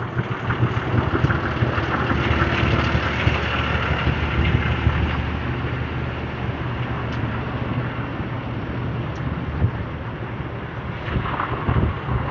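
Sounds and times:
truck engines idling: 0:00.0 - 0:12.2
wind buffeting: 0:00.0 - 0:12.2.

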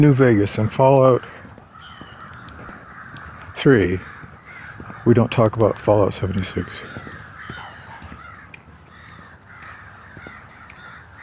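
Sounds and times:
speech: 0:00.0 - 0:01.4, 0:03.6 - 0:04.1, 0:05.0 - 0:07.0
several crows cawing: 0:00.4 - 0:11.2.

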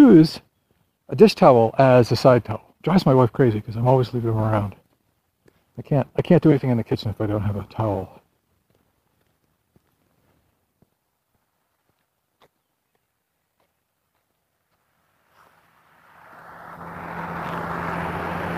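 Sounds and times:
speech: 0:00.1 - 0:00.4, 0:01.1 - 0:04.8, 0:05.8 - 0:08.2
footsteps crunching at a back gate: 0:04.5 - 0:05.9, 0:08.2 - 0:15.6
truck engine roaring as it drives by: 0:15.0 - 0:18.5.

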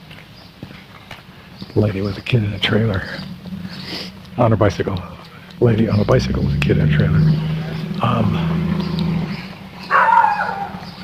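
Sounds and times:
steady low rumble of wind and outdoor noise: 0:00.0 - 0:11.0
speech: 0:01.7 - 0:08.6
dog barking loudly with sharp yelping calls: 0:08.6 - 0:11.0.

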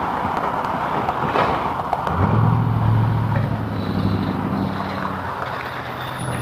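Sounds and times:
Jeep engine drone driving past: 0:00.0 - 0:06.3
road and wind noise: 0:00.0 - 0:06.3.

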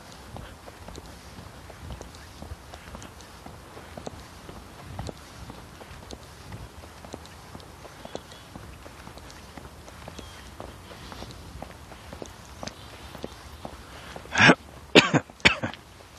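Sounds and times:
faint rustling: 0:00.0 - 0:14.8
harsh coughs: 0:14.3 - 0:15.8
throat-clearing rasp: 0:14.3 - 0:15.8.

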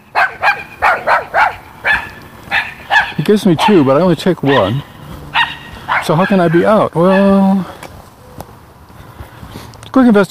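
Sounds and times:
dog barking: 0:00.1 - 0:07.4
speech: 0:03.3 - 0:04.9, 0:06.1 - 0:07.8, 0:10.0 - 0:10.2.

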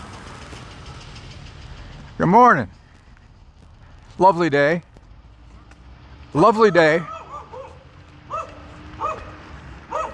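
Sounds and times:
low rumble of outdoor noise: 0:00.0 - 0:10.1
speech: 0:02.2 - 0:02.8, 0:04.2 - 0:04.9, 0:06.3 - 0:07.1
small dog barking outdoors in the morning: 0:07.0 - 0:10.1.

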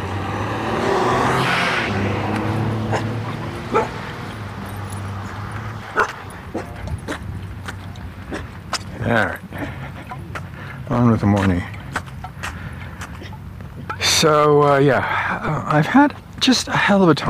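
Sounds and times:
car engine hum: 0:00.0 - 0:17.2
dog barking and yipping: 0:02.8 - 0:05.1, 0:05.8 - 0:07.3
speech: 0:11.2 - 0:11.7, 0:14.2 - 0:17.2.

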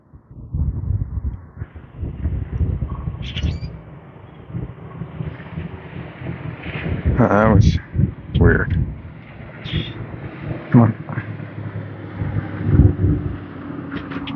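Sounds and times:
low wind rumble: 0:00.0 - 0:14.3
flock of grackles and blackbirds calling: 0:02.6 - 0:04.7
speech: 0:07.2 - 0:07.8, 0:08.4 - 0:08.8, 0:10.7 - 0:11.3.

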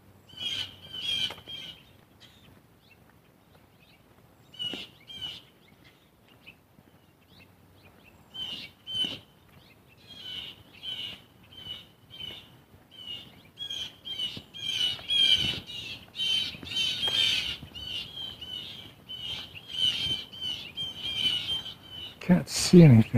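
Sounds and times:
blue jays squawking alarm calls outdoors: 0:00.3 - 0:02.5, 0:04.6 - 0:05.5, 0:08.4 - 0:09.2, 0:10.0 - 0:22.2
speech: 0:22.3 - 0:23.1.

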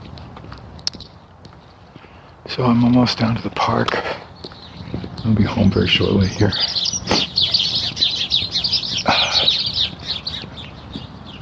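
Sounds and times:
many small birds chirping and tweeting: 0:00.0 - 0:11.4
soft outdoor hum: 0:00.0 - 0:11.4
speech: 0:02.5 - 0:04.3, 0:05.2 - 0:07.2.

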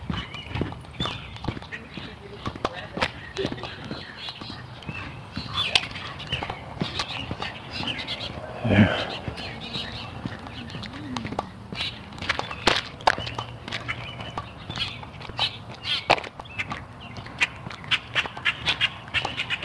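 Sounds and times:
footsteps crunching along outdoor ground: 0:00.0 - 0:19.6
low soft murmur: 0:00.1 - 0:15.5.

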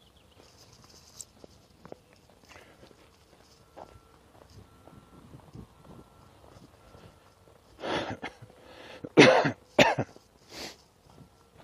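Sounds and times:
person coughing in harsh bursts: 0:07.9 - 0:08.4, 0:09.0 - 0:10.2.

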